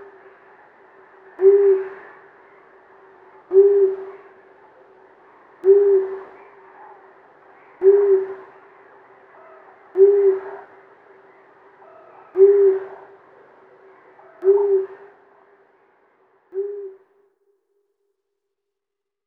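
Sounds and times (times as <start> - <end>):
male long-eared owl calling a deep short hoot: 0.0 - 15.3, 16.6 - 17.0.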